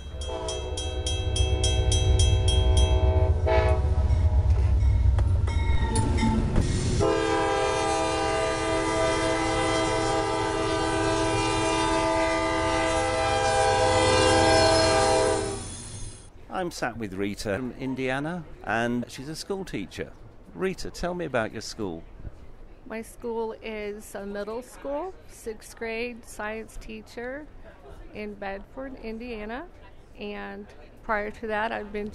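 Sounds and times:
train horn blaring at a US railway station: 0:00.0 - 0:15.9
speech: 0:16.6 - 0:22.1, 0:22.9 - 0:32.1.

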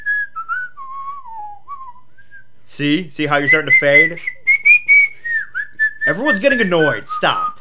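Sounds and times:
person whistling a short tune: 0:00.0 - 0:02.5, 0:03.4 - 0:06.4
speech: 0:02.7 - 0:04.4, 0:06.1 - 0:07.5.

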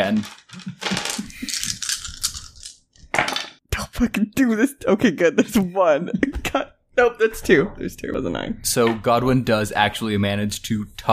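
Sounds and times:
six dice clattering and tumbling across a hard surface: 0:00.0 - 0:03.6
speech: 0:00.1 - 0:00.7, 0:04.0 - 0:11.1.

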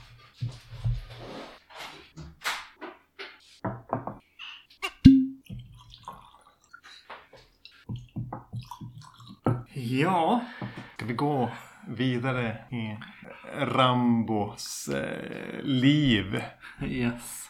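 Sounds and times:
whisky poured from a bottle into glasses: 0:05.1 - 0:07.1, 0:07.9 - 0:09.7
speech: 0:09.8 - 0:17.4.

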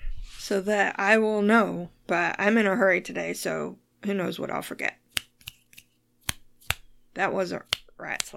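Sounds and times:
speech: 0:00.3 - 0:05.0, 0:07.2 - 0:08.3
fingers snapping: 0:05.1 - 0:06.9, 0:07.6 - 0:08.3.

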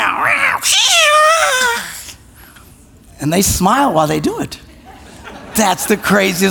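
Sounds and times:
cat meowing: 0:00.0 - 0:01.8
speech: 0:00.6 - 0:00.9, 0:03.2 - 0:04.6, 0:05.6 - 0:06.4
laughter: 0:04.3 - 0:06.4.

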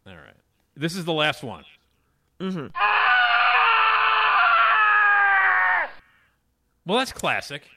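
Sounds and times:
speech: 0:00.8 - 0:01.8, 0:02.4 - 0:02.9, 0:06.9 - 0:07.7
person screaming: 0:02.7 - 0:06.0.

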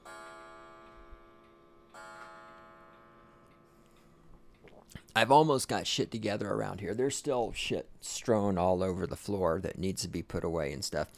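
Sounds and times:
newly activated mechanical clock ticking: 0:00.0 - 0:11.1
speech: 0:04.8 - 0:11.1.

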